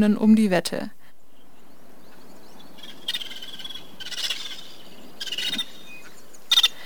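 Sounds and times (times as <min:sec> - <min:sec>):
speech: 0:00.0 - 0:01.0
vulturine guineafowl calls: 0:01.3 - 0:06.8.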